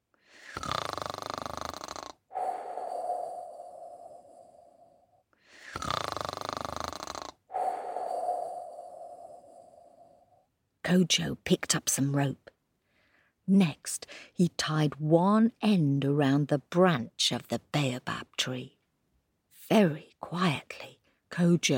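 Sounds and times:
sleeping crocodile snoring: 0:00.3 - 0:10.4
speech: 0:10.9 - 0:12.4, 0:13.5 - 0:18.8, 0:19.7 - 0:21.7.

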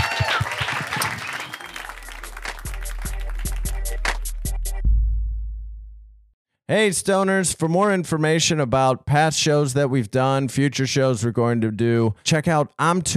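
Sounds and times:
audience applause: 0:00.0 - 0:04.3
thumping bass-heavy music: 0:02.0 - 0:06.3
speech: 0:06.7 - 0:13.1.

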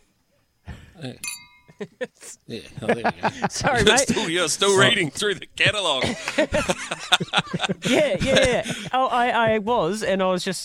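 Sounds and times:
speech: 0:01.0 - 0:10.6
glasses clinking together in a toast: 0:01.2 - 0:01.8
laughter: 0:01.7 - 0:09.6.

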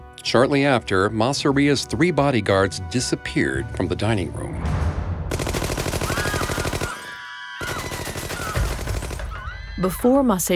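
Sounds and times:
speech: 0:00.2 - 0:04.8, 0:09.8 - 0:10.5
automatic gunfire from four gunmen in a restaurant: 0:05.3 - 0:09.4.

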